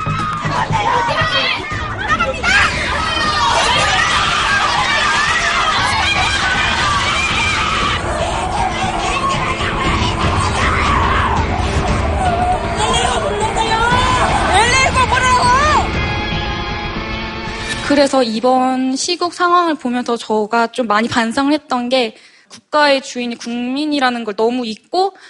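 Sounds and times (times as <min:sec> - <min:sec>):
people screaming high-pitched: 0:00.0 - 0:16.6
crowd shouting at Ewha Womans University main building: 0:00.0 - 0:16.8
speech: 0:18.0 - 0:25.2.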